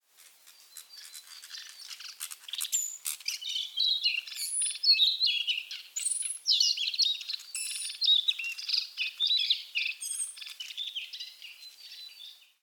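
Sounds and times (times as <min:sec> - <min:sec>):
Ficedula narcissina twittering: 0:01.0 - 0:12.4.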